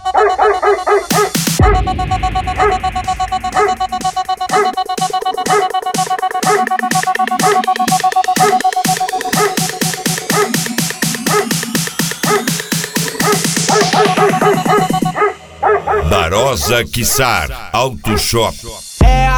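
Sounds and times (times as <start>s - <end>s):
dog barking: 0.1s - 1.4s, 2.6s - 2.8s, 3.5s - 3.8s, 4.5s - 4.8s, 5.4s - 5.8s, 6.4s - 6.7s, 9.3s - 9.7s, 10.3s - 10.6s, 11.2s - 11.5s, 12.2s - 12.5s, 13.2s - 16.2s
loud music with sustained tones and a driving beat: 1.0s - 15.2s, 18.8s - 19.3s
speech: 16.7s - 18.7s.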